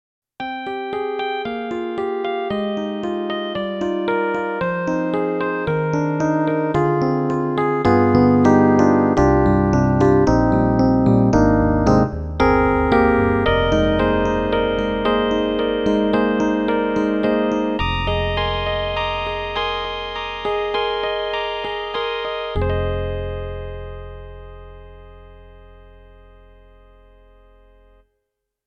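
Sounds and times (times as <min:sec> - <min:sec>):
Yamaha MU90 hard electric piano: 0:00.4 - 0:28.0.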